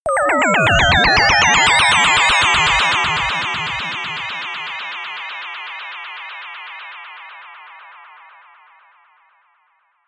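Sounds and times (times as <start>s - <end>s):
short atonal rhythm riser: 0.1s - 5.3s.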